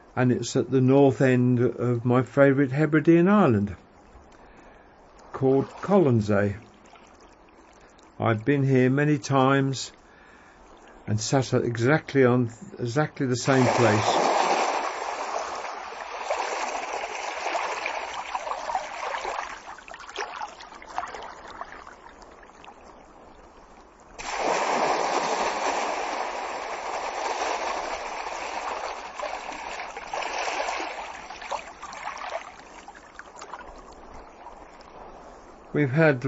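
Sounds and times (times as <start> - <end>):
speech: 0.2 - 3.8, 5.4 - 6.7, 8.2 - 10.0, 11.1 - 14.2, 35.8 - 36.2
gentle small waves washing onto a beach: 4.0 - 8.5, 13.2 - 36.2
steady broad roar of open sea: 12.8 - 22.6, 23.2 - 36.2.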